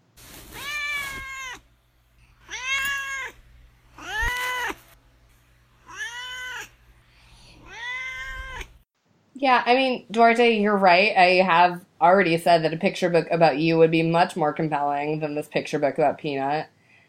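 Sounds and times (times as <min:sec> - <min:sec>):
cat meowing: 0:00.5 - 0:01.7, 0:02.3 - 0:04.8, 0:05.8 - 0:06.8, 0:07.6 - 0:08.8
speech: 0:09.4 - 0:16.7.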